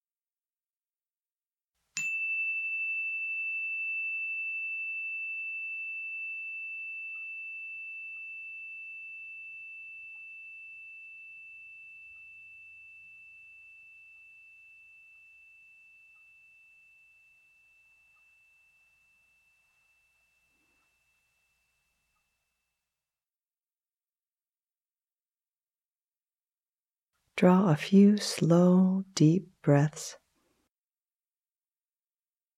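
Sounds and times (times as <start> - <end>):
meditation chime ringing at a loving-kindness meditation: 2.0 - 22.6
speech: 27.4 - 30.2.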